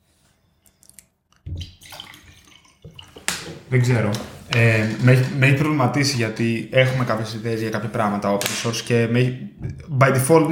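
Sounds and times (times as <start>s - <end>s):
water pouring in a splashing stream: 0.8s - 3.8s
speech: 3.7s - 10.5s.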